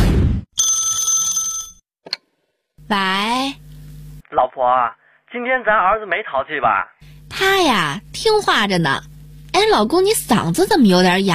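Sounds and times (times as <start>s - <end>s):
telephone ringing for an incoming call from an unknown number: 0.6s - 1.8s
speech: 2.9s - 3.6s, 4.3s - 11.3s.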